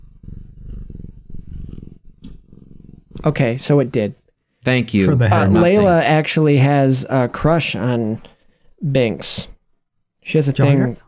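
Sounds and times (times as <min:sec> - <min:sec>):
pet cat with deep rumbling purr-like growl: 0:00.0 - 0:03.3
speech: 0:03.2 - 0:09.5, 0:10.2 - 0:11.0.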